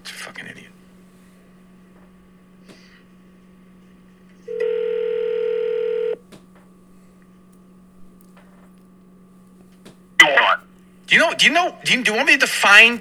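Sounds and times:
speech: 0.3 - 0.8, 11.1 - 13.0
sharp burst of a phone line picking up: 4.4 - 6.2, 10.2 - 10.6
electronic telephone ringing tone: 4.5 - 6.2.

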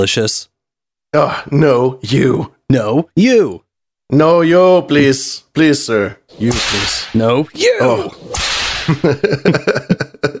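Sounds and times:
speech: 0.0 - 0.5, 1.1 - 10.1
whip crack: 6.4 - 7.3, 8.2 - 9.1
laughter: 8.8 - 10.3.

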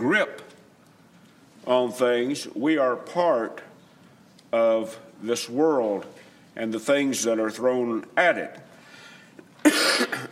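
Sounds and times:
speech: 0.0 - 0.5, 1.6 - 3.7, 4.5 - 8.7
harsh raspy allergy cough: 9.6 - 10.3.

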